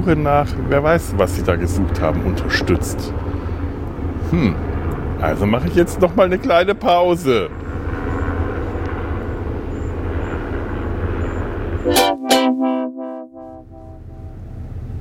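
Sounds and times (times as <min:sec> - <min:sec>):
speech: 0:00.0 - 0:03.3, 0:04.3 - 0:07.6
helicopter circling overhead: 0:00.0 - 0:11.9
harmonic horn-like blast: 0:11.8 - 0:14.4.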